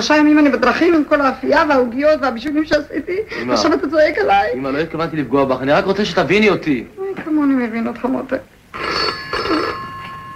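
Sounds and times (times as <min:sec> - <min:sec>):
speech: 0:00.0 - 0:08.5
red rotary dial telephone ringing with metallic bell: 0:08.7 - 0:10.3.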